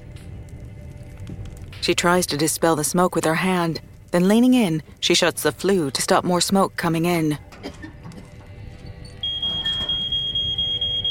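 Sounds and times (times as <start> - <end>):
speech: 1.8 - 7.9
ceiling-mounted smoke alarm beeping: 9.2 - 11.1.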